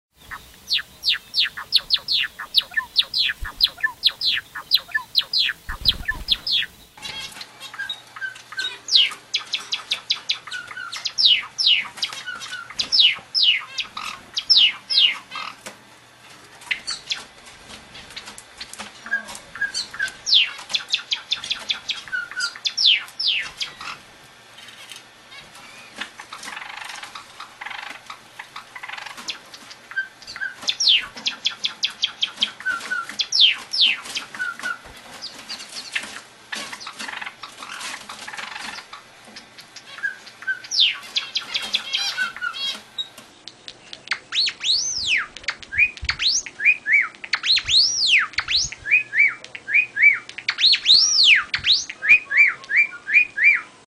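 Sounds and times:
Java sparrow calling: 0:00.2 - 0:15.6, 0:18.0 - 0:24.0, 0:25.3 - 0:43.2, 0:43.8 - 0:53.8.

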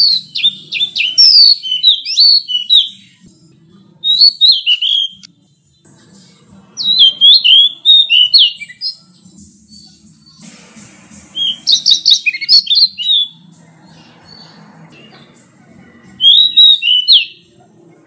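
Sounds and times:
pied bush chat singing high sweet chirping phrases: 0:00.0 - 0:03.4, 0:04.0 - 0:10.6, 0:11.3 - 0:17.9.

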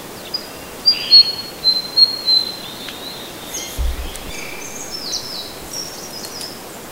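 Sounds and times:
flycatcher bird calling: 0:00.2 - 0:06.8.

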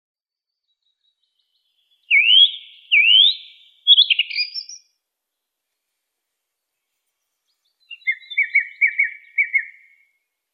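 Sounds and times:
song thrush singing: 0:00.5 - 0:10.5.

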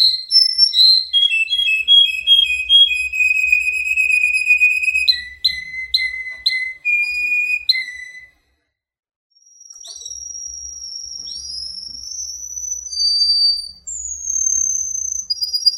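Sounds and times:
Russian canary whistled song: 0:00.0 - 0:08.6, 0:09.4 - 0:15.7.

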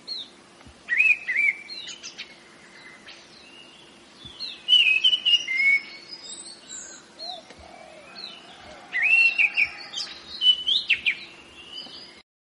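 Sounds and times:
faint steady hum: 0:00.0 - 0:12.2
orange-headed thrush singing clear whistles and looping trills: 0:00.0 - 0:12.2.

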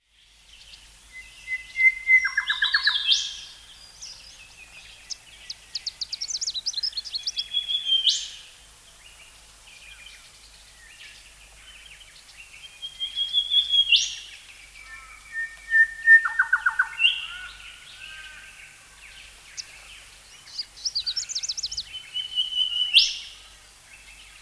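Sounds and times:
dawn chorus of birds: 0:00.2 - 0:24.4.

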